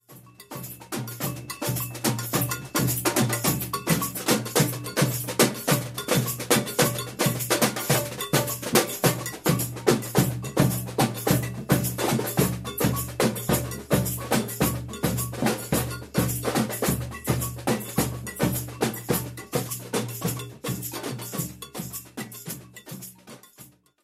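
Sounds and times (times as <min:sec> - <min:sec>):
baiao rhythm: 0:00.0 - 0:23.9.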